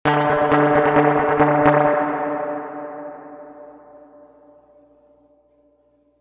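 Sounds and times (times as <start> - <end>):
short staccato spring reverb tank sound: 0.1 - 4.8.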